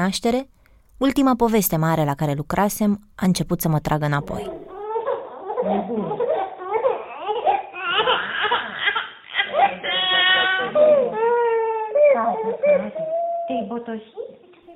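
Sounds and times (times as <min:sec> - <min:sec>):
speech: 0:00.0 - 0:04.6, 0:05.6 - 0:06.2, 0:12.8 - 0:14.3
three-month-old baby crying after waking: 0:04.3 - 0:14.7.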